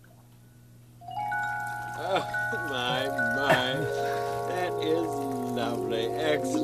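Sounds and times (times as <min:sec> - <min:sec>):
low steady hum: 0:00.0 - 0:06.6
rush of running water from a switched-on waterfall: 0:01.8 - 0:06.6.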